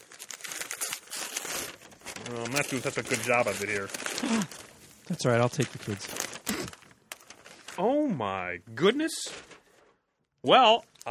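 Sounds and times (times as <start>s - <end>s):
paper packaging crinkling as it is pulled open: 0.0s - 8.0s
speech: 2.3s - 6.6s, 7.8s - 9.6s, 10.4s - 11.1s.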